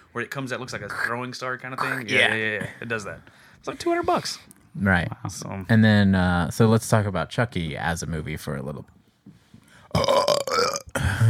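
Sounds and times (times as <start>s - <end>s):
speech: 0.2s - 9.0s, 9.9s - 10.2s
loud burp: 9.9s - 11.2s.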